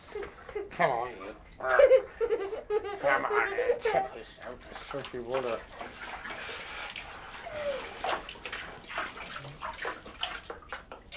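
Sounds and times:
laughter: 0.2 - 4.3
speech: 0.8 - 1.2, 3.2 - 6.1
water tipped out of a tub, pouring and sloshing: 3.8 - 11.1.

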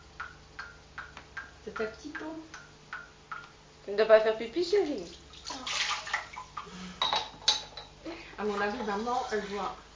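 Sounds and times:
speech: 1.8 - 2.6, 3.9 - 5.2, 8.4 - 9.9
water splashing in a child's small pool: 4.9 - 6.7.

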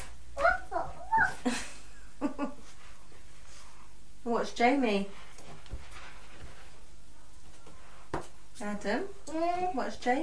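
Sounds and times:
young child imitating a dog with short high yips: 0.4 - 1.5
speech: 4.4 - 5.2, 8.6 - 10.2.

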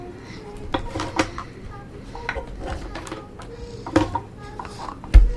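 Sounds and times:
plastic toy kitchen dishes and pans clattering during rummaging: 0.6 - 1.6, 2.2 - 5.3.

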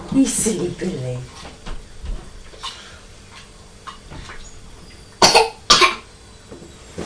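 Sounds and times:
speech: 0.3 - 1.6
child coughing: 5.2 - 6.1.

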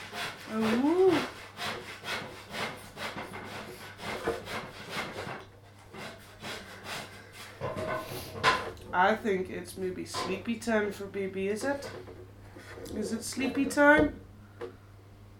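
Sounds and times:
wood being sawn by hand: 0.0 - 8.3
speech: 9.0 - 12.2, 13.0 - 14.2.

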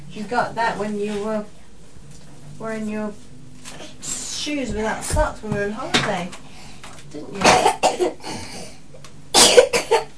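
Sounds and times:
speech: 0.2 - 1.6, 2.6 - 3.3, 4.4 - 6.4, 7.1 - 8.8
harsh breathy coughs: 7.4 - 8.8, 9.4 - 10.1.

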